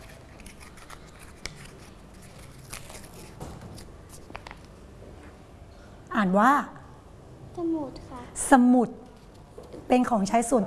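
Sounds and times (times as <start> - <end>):
paper crinkling and tearing as a child unwraps it: 0.0 - 4.7
speech: 6.2 - 6.8, 7.6 - 9.0, 9.9 - 10.6.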